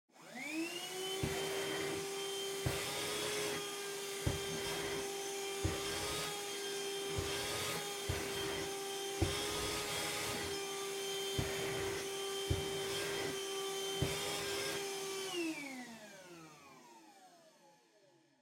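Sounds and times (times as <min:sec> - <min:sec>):
distant vacuum cleaner vacuuming the floor: 0:00.2 - 0:17.6.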